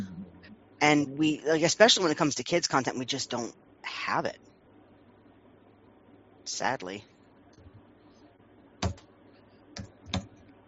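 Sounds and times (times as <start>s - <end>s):
quiet hum: 0.0s - 10.6s
speech: 0.8s - 4.5s, 6.5s - 7.1s
hard keystrokes on a computer keyboard: 8.8s - 9.0s, 9.8s - 10.4s.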